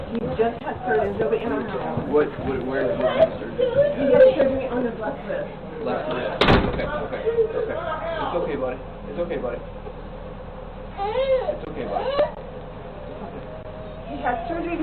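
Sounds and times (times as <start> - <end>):
speech: 0.2 - 9.8, 11.0 - 12.4, 14.1 - 14.8
door being kicked in during a raid: 6.4 - 7.0.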